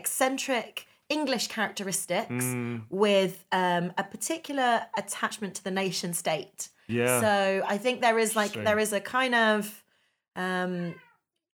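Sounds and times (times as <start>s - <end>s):
speech: 0.2s - 9.8s, 10.4s - 11.0s
cat meowing: 10.9s - 11.2s.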